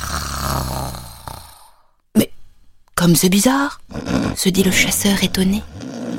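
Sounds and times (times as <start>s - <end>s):
wolf snoring loudly while napping: 0.0s - 1.9s, 3.9s - 6.1s
speech: 3.0s - 5.8s.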